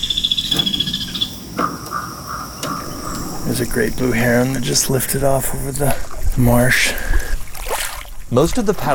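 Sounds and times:
kingfisher chattering above the water: 0.0 - 7.1
speech: 3.5 - 7.1, 8.3 - 8.9.

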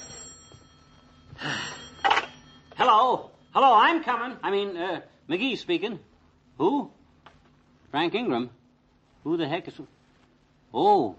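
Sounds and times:
telephone bell ringing in a house: 0.0 - 4.0
hiss: 1.3 - 11.1
speech: 2.9 - 7.0, 7.9 - 8.6, 9.2 - 10.0, 10.7 - 11.1.

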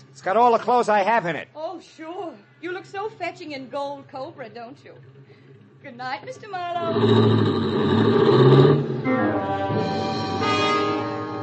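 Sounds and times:
speech: 0.2 - 5.2, 5.8 - 8.4, 9.0 - 10.1
car engine revving as it accelerates away down an alley: 3.8 - 11.4.

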